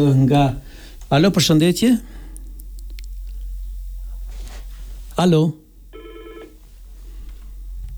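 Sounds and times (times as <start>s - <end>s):
speech: 0.0s - 2.2s, 5.2s - 5.6s
faint telephone ringing while a call is connected: 5.9s - 6.6s
quiet telephone line hiss: 5.9s - 7.0s.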